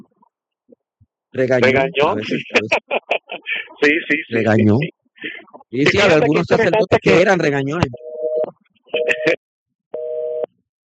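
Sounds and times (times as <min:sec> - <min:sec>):
speech: 0:01.4 - 0:03.1, 0:03.8 - 0:05.0, 0:05.7 - 0:08.0, 0:09.2 - 0:09.4
laughter: 0:01.6 - 0:07.4, 0:09.0 - 0:09.4
telephone busy tone after a dropped call: 0:10.0 - 0:10.5.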